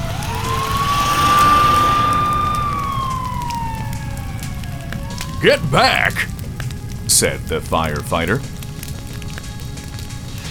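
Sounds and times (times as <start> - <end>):
fire engine siren wailing: 0.0 - 7.0
speech: 5.4 - 6.3, 7.2 - 8.6.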